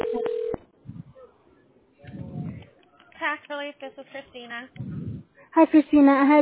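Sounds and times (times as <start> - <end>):
telephone tones as a call is dialed: 0.0 - 0.6
speech: 3.3 - 4.9, 5.5 - 6.3.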